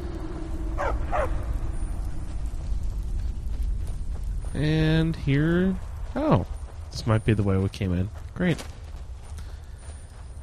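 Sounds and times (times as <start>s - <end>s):
steady low rumbling background: 0.0s - 10.4s
video game dogs yelping: 0.8s - 1.4s
speech: 4.6s - 8.8s.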